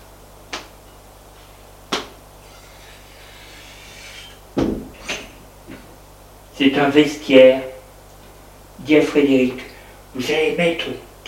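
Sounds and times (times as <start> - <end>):
door thud: 4.6 - 5.0
speech: 6.6 - 7.7, 8.9 - 11.0.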